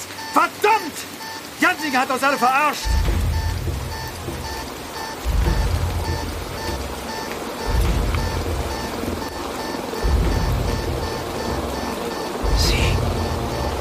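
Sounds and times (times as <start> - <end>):
heavy rain pouring down: 0.0 - 13.8
speech: 1.8 - 3.2
deep rumbling: 2.8 - 13.8.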